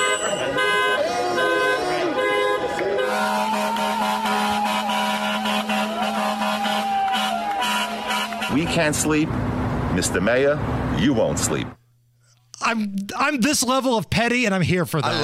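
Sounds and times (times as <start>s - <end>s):
many car horns honking in the street: 0.0s - 9.1s
speech: 8.5s - 11.8s, 12.7s - 15.2s.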